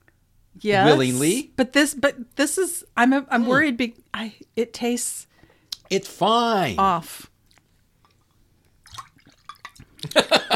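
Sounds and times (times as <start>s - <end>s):
speech: 0.6s - 5.3s, 5.9s - 7.3s, 10.0s - 10.5s
liquid splashing and trickling: 7.5s - 10.0s
drink glugging as it is poured into a glass: 8.8s - 10.0s
laughter: 10.0s - 10.5s.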